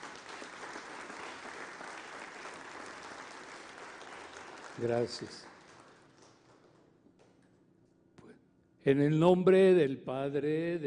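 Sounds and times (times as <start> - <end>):
audience applause: 0.0 - 6.8
speech: 4.8 - 5.5, 8.9 - 10.8.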